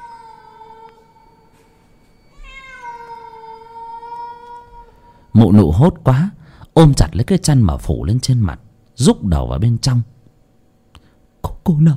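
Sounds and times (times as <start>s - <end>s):
cat yowling outside a window: 0.0s - 1.1s, 2.3s - 5.1s
speech: 5.4s - 10.1s, 11.7s - 11.9s.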